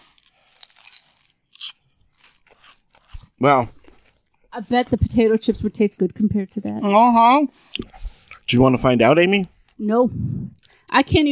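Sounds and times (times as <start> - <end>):
crunchy chewing of a peanut butter wafer sheet: 0.0 - 4.4
speech: 3.4 - 3.8, 4.6 - 11.3.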